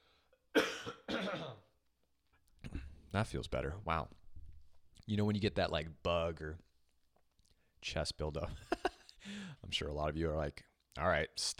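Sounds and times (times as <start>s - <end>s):
throat-clearing coughs: 0.5s - 1.7s
speech: 3.1s - 4.2s, 5.0s - 6.7s, 7.8s - 11.5s.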